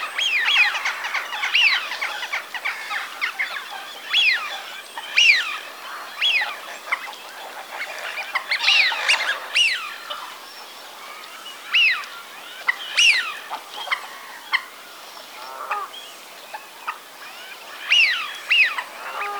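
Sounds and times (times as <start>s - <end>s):
Eurasian wigeon whistling calls: 0.0s - 7.1s, 7.7s - 10.1s, 11.7s - 14.7s, 17.3s - 19.3s.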